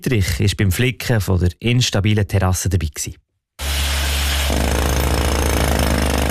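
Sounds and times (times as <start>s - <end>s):
speech: 0.0s - 3.3s
mechanical drilling into rock and retaining wall below a restaurant terrace in Fribourg: 3.6s - 6.2s.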